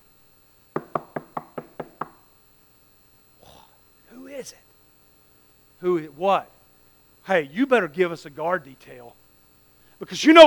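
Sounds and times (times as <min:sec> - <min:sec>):
knocking on a wooden door: 0:00.8 - 0:02.3
speech: 0:04.4 - 0:04.6, 0:05.8 - 0:06.5, 0:07.2 - 0:09.2, 0:10.0 - 0:10.4.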